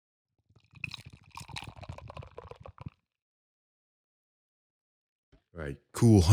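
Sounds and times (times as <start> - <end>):
beer pouring into a glass: 0.7 - 3.0
speech: 5.6 - 6.3.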